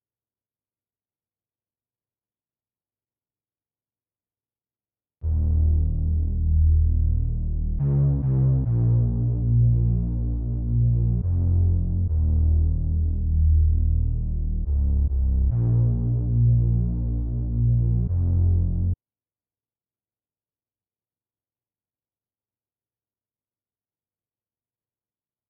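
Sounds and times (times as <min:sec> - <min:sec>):
140 BPM D sharp minor bass line: 0:05.2 - 0:19.0.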